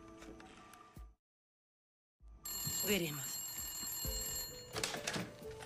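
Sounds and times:
telephone ringing with a high electronic tone: 2.5 - 5.5
speech: 2.9 - 3.3.

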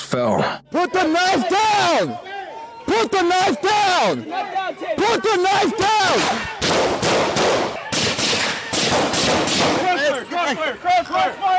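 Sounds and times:
speech: 0.1 - 7.8, 9.3 - 11.5
people shouting: 0.7 - 10.1
police officers firing gunshots at a man holding a knife: 6.0 - 10.1.

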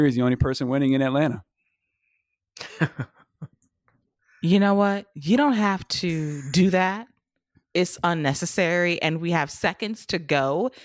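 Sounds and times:
speech: 0.0 - 1.5, 2.6 - 3.5, 4.4 - 7.1, 7.7 - 10.8
person coughing: 6.1 - 6.6.

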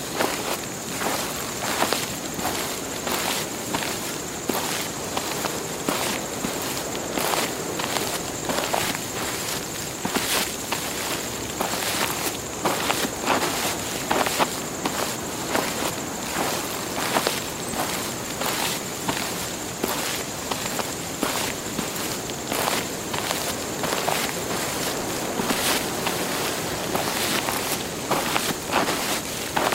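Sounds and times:
footsteps crunching through dry leaves at a walking pace: 0.0 - 29.7
soft rustle: 0.0 - 29.7.

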